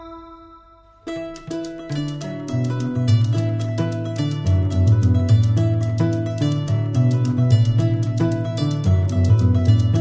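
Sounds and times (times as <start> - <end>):
kora: 0.0 - 9.9.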